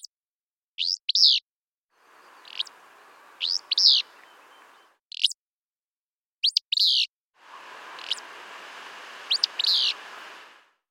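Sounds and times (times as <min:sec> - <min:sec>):
soft airy hiss: 0:02.0 - 0:04.9, 0:07.4 - 0:10.8
Willow Flycatcher Empidonax traillii singing: 0:02.0 - 0:05.0, 0:06.4 - 0:10.5.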